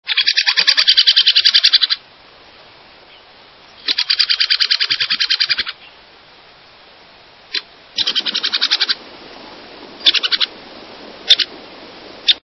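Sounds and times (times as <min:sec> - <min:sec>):
Ladder-backed woodpecker: 0:00.1 - 0:02.0, 0:03.8 - 0:05.8, 0:07.5 - 0:09.0, 0:10.0 - 0:10.5, 0:11.3 - 0:11.5.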